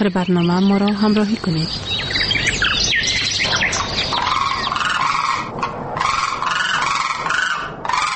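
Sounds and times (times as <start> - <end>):
speech: 0.0 - 2.0
flock of migratory common cranes trumpeting and bugling: 2.1 - 8.1.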